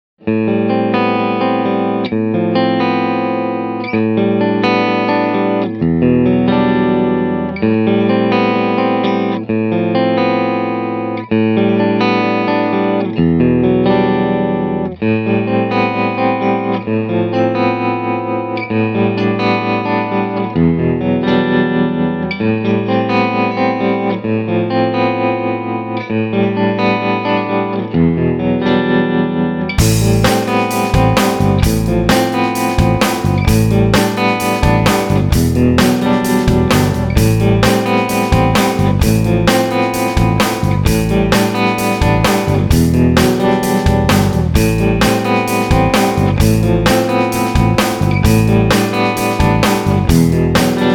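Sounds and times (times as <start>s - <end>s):
dry clean modern electric guitar: 0.2s - 50.9s
band playing: 29.8s - 50.9s.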